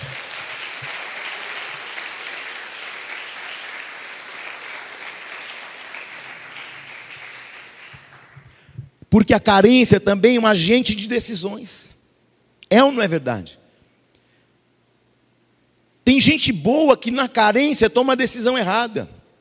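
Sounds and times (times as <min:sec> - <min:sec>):
audience at a church service applauding: 0:00.0 - 0:08.6
speech: 0:09.1 - 0:11.9, 0:12.7 - 0:13.6, 0:16.1 - 0:19.2.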